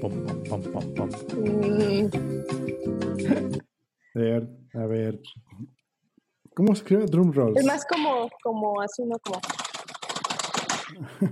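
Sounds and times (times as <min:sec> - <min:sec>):
speech: 0:00.0 - 0:03.6, 0:04.2 - 0:05.7, 0:06.6 - 0:09.6, 0:10.9 - 0:11.3
typing on a computer keyboard: 0:09.1 - 0:10.9.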